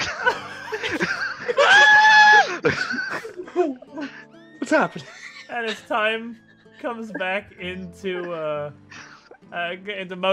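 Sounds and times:
snickering, laugh-like vocal sounds: 0:00.0 - 0:07.4
laughter: 0:00.0 - 0:09.4
person screaming loudly: 0:01.6 - 0:02.6
speech: 0:04.7 - 0:08.8, 0:09.5 - 0:10.3.

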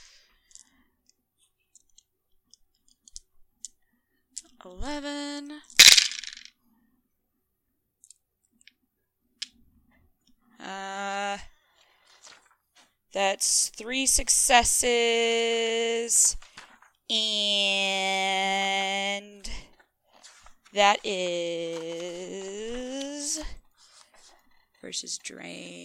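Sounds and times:
speech: 0:04.6 - 0:05.8, 0:13.2 - 0:16.5, 0:17.1 - 0:19.3, 0:20.8 - 0:23.6, 0:24.9 - 0:25.8
handful of dice clattering: 0:05.8 - 0:06.5.

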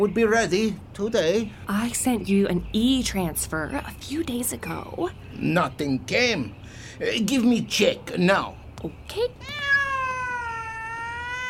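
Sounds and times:
speech: 0:00.0 - 0:09.6
cat meowing: 0:09.4 - 0:11.4.

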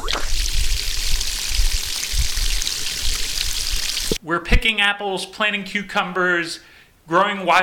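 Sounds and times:
low gurgling thuds: 0:00.0 - 0:04.2
water pouring and splashing from a bucket drawn from a well: 0:00.0 - 0:04.2
speech: 0:04.3 - 0:07.6.

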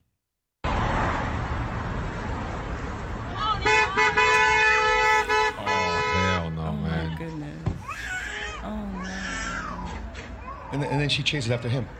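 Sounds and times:
busy street traffic: 0:00.6 - 0:11.9
car horns honking: 0:03.4 - 0:06.6
couple arguing in a car: 0:03.4 - 0:11.9
speech: 0:10.8 - 0:11.9.

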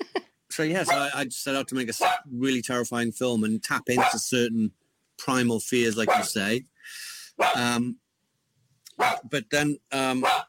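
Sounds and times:
speech: 0:00.6 - 0:08.0, 0:09.0 - 0:10.4
dogs barking: 0:00.8 - 0:01.2, 0:02.0 - 0:02.3, 0:03.9 - 0:04.3, 0:06.0 - 0:06.4, 0:07.4 - 0:07.8, 0:08.9 - 0:09.3, 0:10.2 - 0:10.4.

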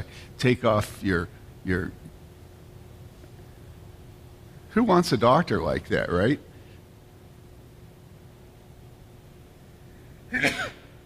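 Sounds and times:
speech: 0:00.1 - 0:02.1, 0:04.7 - 0:06.5, 0:10.3 - 0:10.7
person sneezing in an audience: 0:10.3 - 0:11.0.

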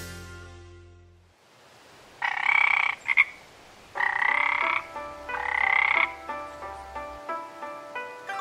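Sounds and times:
chorus of frogs croaking from rice paddies: 0:02.1 - 0:08.2.

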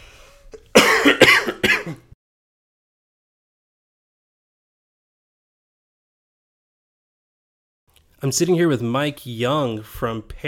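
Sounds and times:
person coughing: 0:00.6 - 0:02.2
speech: 0:08.2 - 0:10.4.

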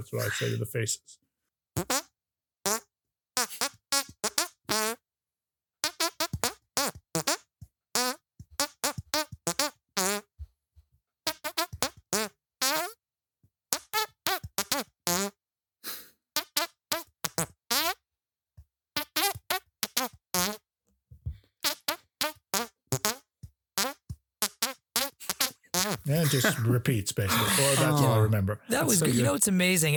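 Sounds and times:
laughter: 0:00.0 - 0:00.8, 0:25.4 - 0:29.9
speech: 0:00.0 - 0:01.2, 0:01.8 - 0:02.0, 0:26.3 - 0:29.9
squelchy hand farts playing a song's melody: 0:01.8 - 0:02.1, 0:02.7 - 0:05.0, 0:05.8 - 0:10.3, 0:11.3 - 0:13.0, 0:13.7 - 0:15.4, 0:16.4 - 0:18.0, 0:19.0 - 0:20.6, 0:21.6 - 0:29.3.

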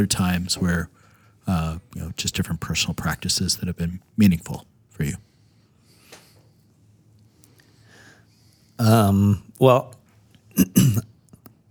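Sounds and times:
speech: 0:00.0 - 0:05.3, 0:08.8 - 0:10.0, 0:10.6 - 0:11.1
person coughing from something caught in the throat: 0:10.6 - 0:11.1.

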